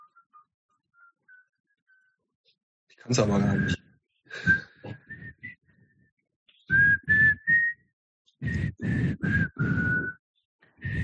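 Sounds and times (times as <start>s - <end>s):
person whistling a simple tune: 0.0s - 2.2s, 3.5s - 6.1s, 6.7s - 10.2s, 10.8s - 11.0s
speech: 3.0s - 3.8s
breathy puffs: 3.4s - 5.8s, 8.4s - 11.0s.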